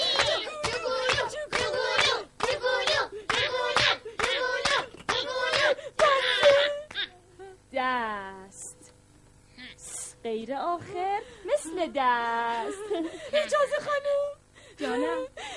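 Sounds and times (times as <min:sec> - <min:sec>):
laughter: 0:00.0 - 0:01.8, 0:11.6 - 0:15.3
group of children cheering in rhythmic bursts: 0:00.0 - 0:06.6
children's hand claps: 0:00.0 - 0:07.1
speech: 0:10.3 - 0:15.3.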